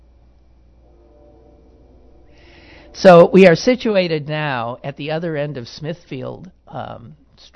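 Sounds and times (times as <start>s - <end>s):
low rumble: 0.0s - 7.4s
train whistle: 0.7s - 3.9s
speech: 3.0s - 7.5s.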